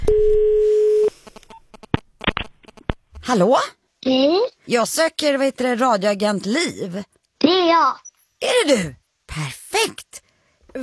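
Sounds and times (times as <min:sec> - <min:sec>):
telephone ringback tone while a call is placed: 0:00.0 - 0:01.1
speech: 0:03.3 - 0:10.2.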